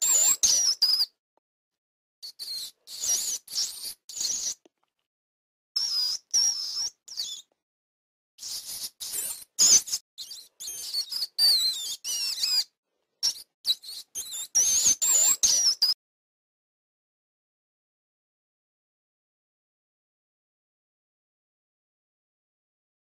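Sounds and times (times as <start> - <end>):
rat squeaks: 0.0 - 1.2, 2.2 - 4.6, 5.8 - 7.5, 8.4 - 16.0.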